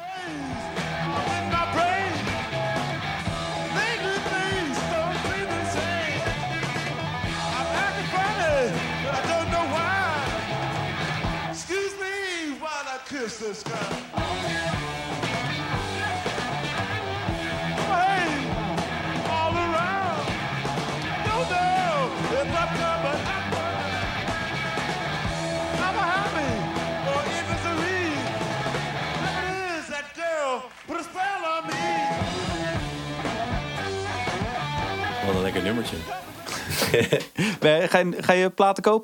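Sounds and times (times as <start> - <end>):
rock drums: 0.0 - 39.0
rock bass: 0.1 - 11.8, 14.0 - 29.8, 31.7 - 37.9
distorted electric guitar bending and wailing: 0.3 - 11.7, 14.0 - 29.6, 31.7 - 37.3
speech: 13.4 - 14.6, 35.6 - 36.3, 36.9 - 39.0
laughter: 35.5 - 38.3.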